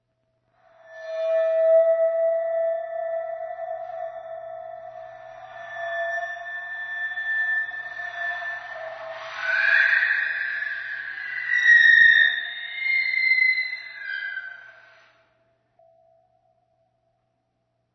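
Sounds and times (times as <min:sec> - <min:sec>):
ambience: 0:00.6 - 0:15.2.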